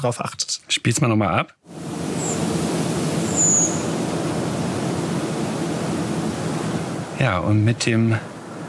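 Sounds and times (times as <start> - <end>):
speech: 0.0 - 1.8, 7.2 - 8.3
steady rushing night-time noise: 1.7 - 8.6
redwing flight calls during migration: 1.8 - 7.2.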